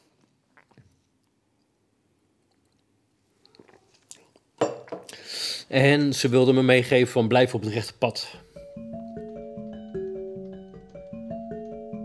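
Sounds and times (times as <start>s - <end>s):
faint clicks and mouth sounds: 0.0s - 5.2s
speech: 5.7s - 8.4s.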